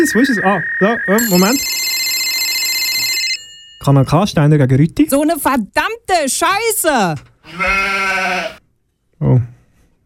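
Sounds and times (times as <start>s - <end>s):
speech: 0.0s - 1.8s, 3.8s - 8.6s, 9.2s - 9.5s
telephone ringing with a shrill electronic trill: 1.2s - 4.2s.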